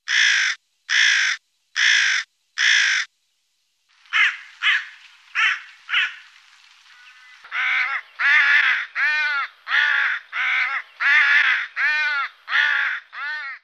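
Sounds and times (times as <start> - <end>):
carrion crow calls: 0.0 - 3.1, 4.1 - 13.6.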